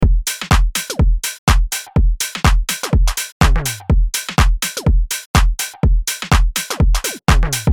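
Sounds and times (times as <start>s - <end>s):
deep house music at 124 BPM: 0.0s - 7.7s.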